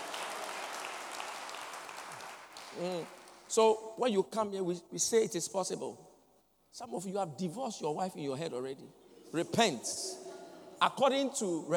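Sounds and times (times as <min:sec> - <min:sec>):
crowd clapping: 0:00.0 - 0:03.5
speech: 0:02.8 - 0:06.1, 0:06.7 - 0:10.2, 0:10.8 - 0:11.7.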